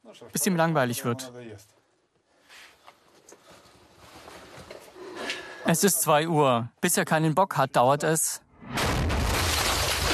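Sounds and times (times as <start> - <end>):
speech: 0.1 - 1.8, 5.6 - 8.8
explosive weapon shot punching through a wall: 8.6 - 10.1.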